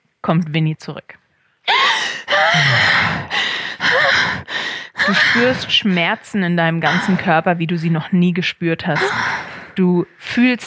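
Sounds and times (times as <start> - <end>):
speech: 0.2 - 1.2, 5.0 - 10.6
person gasping for breath while being revived: 1.7 - 5.9, 9.0 - 9.8.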